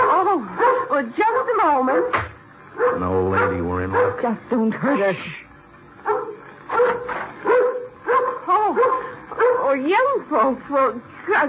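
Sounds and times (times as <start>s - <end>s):
dog barking in short yappy bursts: 0.0s - 4.3s, 6.0s - 9.8s
speech: 1.0s - 5.4s, 9.7s - 11.4s.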